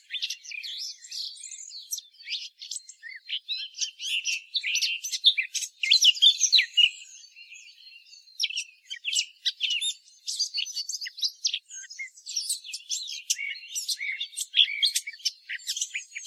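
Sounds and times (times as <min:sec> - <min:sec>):
Eurasian blackcap Sylvia atricapilla singing: 0:00.0 - 0:16.2.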